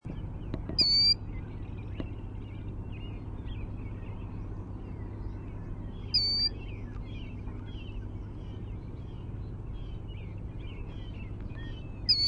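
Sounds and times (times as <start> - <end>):
killdeer calling dee: 0.1 - 12.2.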